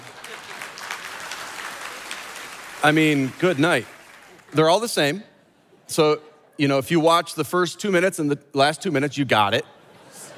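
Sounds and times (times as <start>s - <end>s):
crowd applauding: 0.0s - 4.9s
speech: 2.8s - 5.3s, 5.9s - 9.8s.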